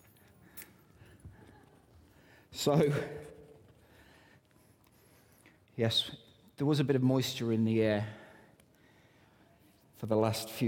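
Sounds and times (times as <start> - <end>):
keys jangling: 0.0 - 1.3
speech: 2.5 - 3.2, 5.8 - 8.2, 10.0 - 10.6.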